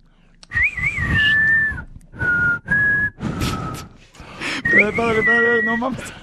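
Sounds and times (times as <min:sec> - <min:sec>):
breathy noisy background: 0:00.0 - 0:04.8
person whistling a tune: 0:00.4 - 0:06.2
speech: 0:04.8 - 0:06.2.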